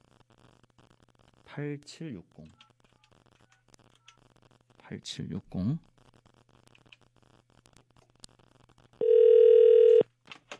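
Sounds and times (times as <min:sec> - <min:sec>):
faint low noise: 0:00.0 - 0:10.5
speech: 0:01.5 - 0:02.6, 0:04.9 - 0:05.9
electronic telephone ringback tone from an outgoing call: 0:09.0 - 0:10.0.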